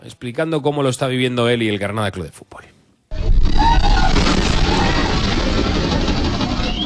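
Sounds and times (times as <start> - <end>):
speech: 0.1 - 2.8
earthquake rumble in Granada during a series of tremors: 3.1 - 6.8.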